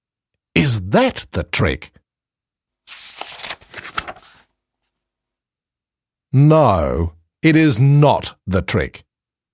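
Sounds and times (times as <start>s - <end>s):
speech: 0.8s - 2.0s, 6.3s - 9.0s
long strip of paper rustling and crinkling as folded: 2.9s - 4.6s.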